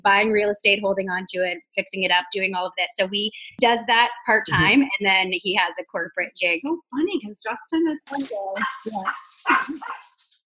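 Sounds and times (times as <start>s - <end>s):
speech: 0.0s - 10.0s
puppies barking and yipping: 8.6s - 10.2s.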